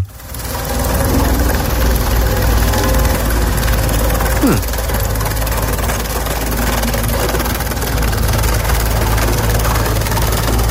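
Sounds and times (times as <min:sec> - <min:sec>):
heavy road roller diesel engine rumbling: 0:00.0 - 0:10.6
person murmuring: 0:04.4 - 0:04.7
speech: 0:04.5 - 0:04.7.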